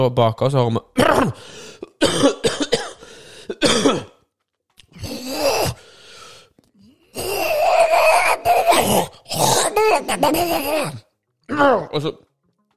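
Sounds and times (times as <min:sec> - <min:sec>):
speech: 0:00.0 - 0:02.8, 0:08.8 - 0:12.2
voice imitating a man clearing his throat and coughing: 0:01.0 - 0:04.2, 0:04.9 - 0:05.8, 0:07.0 - 0:11.1.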